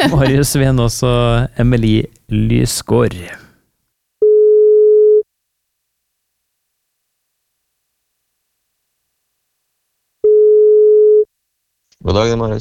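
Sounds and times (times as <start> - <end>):
speech: 0.0 - 3.4, 12.0 - 12.5
telephone ringback tone while placing a call: 4.2 - 5.2, 10.2 - 11.3.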